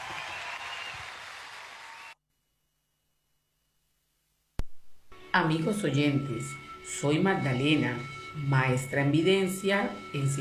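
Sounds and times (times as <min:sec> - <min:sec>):
audience applause: 0:00.0 - 0:02.2
speech: 0:05.3 - 0:10.3.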